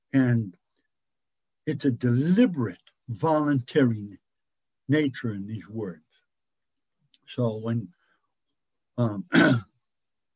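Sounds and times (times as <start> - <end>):
speech: 0.1 - 0.6, 1.6 - 4.2, 4.9 - 6.0, 7.3 - 8.0, 9.0 - 9.7
person struggling to clear their throat: 9.2 - 9.7.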